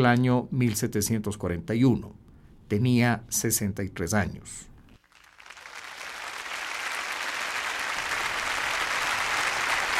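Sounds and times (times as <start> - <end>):
speech: 0.0 - 4.7
concert audience applauding soloists: 5.0 - 9.9.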